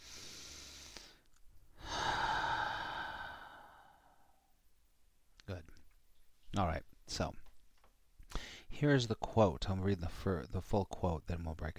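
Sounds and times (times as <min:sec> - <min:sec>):
slow deep breath with long airy exhale: 0:00.0 - 0:04.5, 0:08.3 - 0:08.7
speech: 0:06.6 - 0:07.4, 0:08.8 - 0:11.7.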